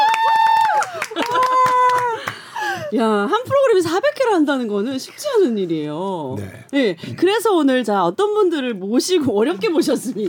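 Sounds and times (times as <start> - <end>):
group clapping in celebratory dolphin applause: 0.0 - 2.8
speech: 2.9 - 10.2.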